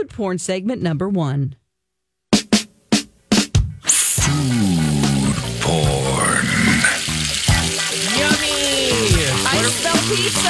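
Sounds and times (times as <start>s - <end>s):
speech: 0.1s - 1.6s
food frying in a pan: 3.8s - 10.4s
indistinct voices murmuring: 3.9s - 10.4s.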